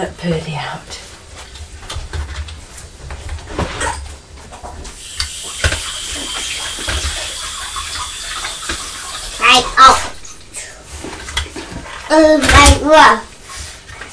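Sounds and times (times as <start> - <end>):
speech: 0.0 - 1.1, 9.5 - 10.0, 12.1 - 13.3
water running from a tap as an apple is rinsed: 5.0 - 10.4.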